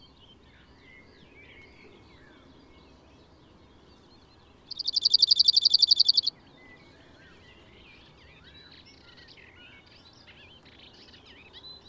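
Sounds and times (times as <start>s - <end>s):
faint background hiss: 0.0s - 11.8s
Cirl bunting song rattling trill: 4.7s - 6.3s.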